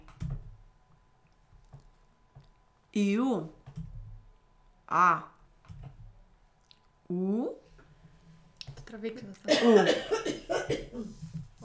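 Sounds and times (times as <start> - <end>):
speech: 3.0 - 3.6, 4.9 - 5.3, 7.1 - 7.6, 8.9 - 11.2
person making short voiced vowel-like sounds: 4.9 - 5.4
person coughing: 9.4 - 11.6.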